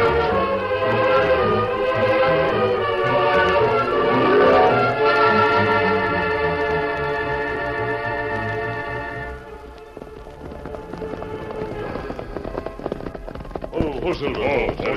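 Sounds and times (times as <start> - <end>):
horse hooves clip-clopping to a stop: 0.0 - 14.9
sustained tone: 1.2 - 6.8
rain-like rushing noise: 1.9 - 14.9.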